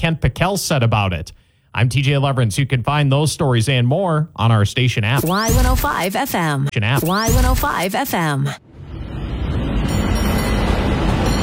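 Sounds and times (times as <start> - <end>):
speech: 0.0 - 8.7
cable car rumbling with mechanical clatter: 8.8 - 11.4.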